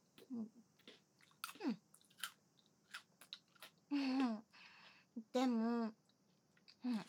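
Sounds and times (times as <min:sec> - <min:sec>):
soft murmured hums: 0:00.0 - 0:02.0, 0:03.9 - 0:07.0
chewing of food being fed by hand: 0:00.2 - 0:03.8
speech: 0:00.3 - 0:00.6, 0:05.4 - 0:06.0.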